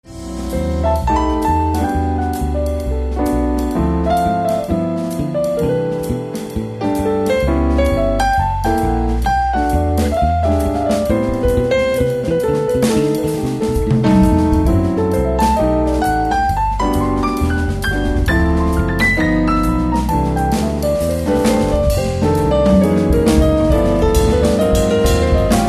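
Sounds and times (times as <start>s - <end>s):
jazz atmosphere music: 0.0s - 25.6s.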